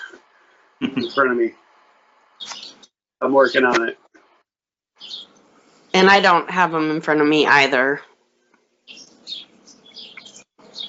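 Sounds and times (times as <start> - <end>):
chorus of birds chirping: 0.0 - 1.6, 2.2 - 4.0, 5.0 - 8.0, 8.8 - 10.8
speech: 0.8 - 1.6, 3.2 - 4.0, 6.0 - 8.1.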